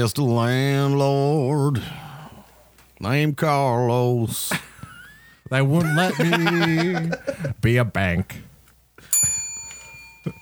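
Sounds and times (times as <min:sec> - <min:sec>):
speech: 0:00.0 - 0:02.0, 0:03.0 - 0:04.7, 0:05.5 - 0:08.4
laughter: 0:04.4 - 0:07.6
bell struck and ringing: 0:09.0 - 0:10.4.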